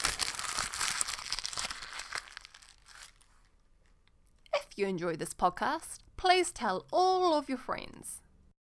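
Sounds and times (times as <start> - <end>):
paper being torn: 0.0 - 3.5
paper being crumpled: 0.0 - 4.0
speech: 4.8 - 8.2.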